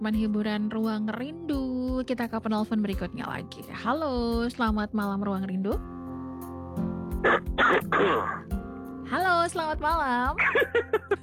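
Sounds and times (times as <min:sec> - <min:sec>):
speech: 0:00.0 - 0:06.0, 0:07.2 - 0:11.2
harsh coughs: 0:07.2 - 0:08.5, 0:10.4 - 0:11.2.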